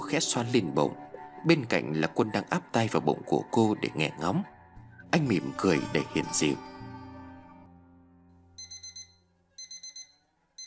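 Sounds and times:
speech: 0.1s - 4.5s, 5.1s - 6.7s
alarm clock ringing in rapid high electronic beeps: 8.6s - 10.6s.

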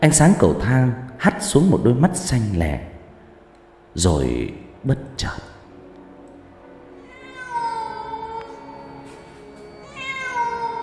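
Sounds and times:
speech: 0.0s - 2.9s, 4.0s - 5.5s
cat meowing in a stairwell: 7.0s - 9.0s, 9.8s - 10.8s.

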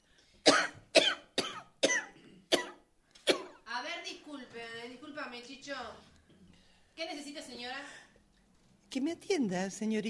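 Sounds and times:
feverish woman coughing: 0.5s - 3.7s
speech: 4.5s - 6.2s, 7.0s - 8.0s, 8.9s - 10.0s.

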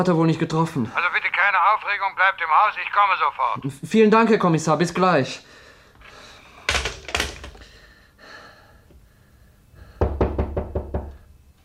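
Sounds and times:
speech: 0.0s - 5.6s
faint breathy sounds: 5.4s - 6.8s, 7.4s - 10.3s
knocking on a door: 10.0s - 11.2s.

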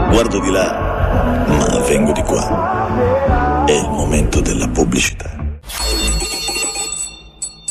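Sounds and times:
speech: 0.2s - 6.2s
bell ringing: 5.7s - 7.7s.

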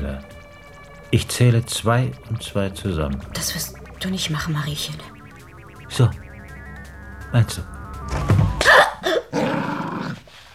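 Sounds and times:
speech: 1.1s - 5.2s, 5.9s - 6.2s, 7.3s - 7.8s
dog barking and growling: 5.2s - 10.3s.

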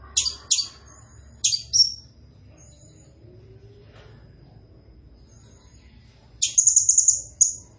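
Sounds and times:
blue-crowned hanging parrot calls: 0.2s - 2.1s, 6.4s - 7.7s.

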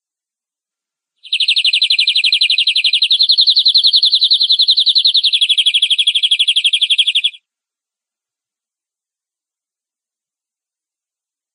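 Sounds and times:
canary trilling: 1.2s - 7.4s.

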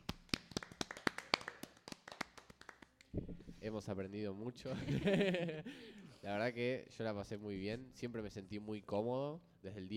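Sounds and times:
applause for a departing teacher: 0.0s - 3.1s
speech: 3.6s - 9.9s.

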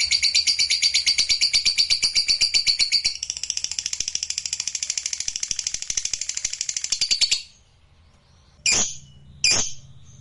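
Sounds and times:
lovebird song of rapid high buzzy pulsing notes: 0.0s - 7.6s.

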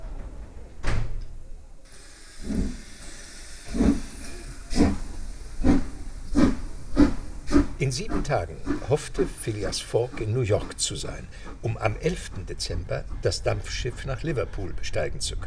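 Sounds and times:
steam locomotive hiss of steam: 1.9s - 13.8s
steam locomotive pulling out of a station chuffing: 1.9s - 15.4s
speech: 7.8s - 15.4s.

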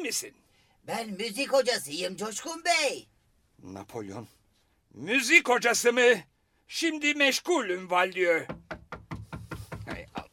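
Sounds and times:
speech: 0.0s - 8.7s
firm knocking on a door: 8.4s - 10.3s.

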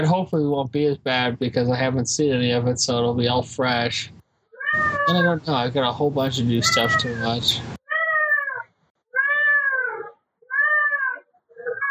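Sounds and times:
speech: 0.0s - 7.8s
angry cat yowling: 4.6s - 5.4s, 6.6s - 7.2s, 7.9s - 8.6s, 9.2s - 11.8s.

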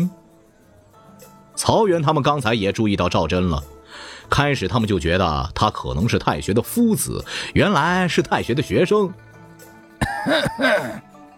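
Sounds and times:
speech: 0.0s - 0.2s, 1.6s - 9.2s, 10.2s - 11.1s
staged cough in an audio drama: 10.0s - 11.1s.

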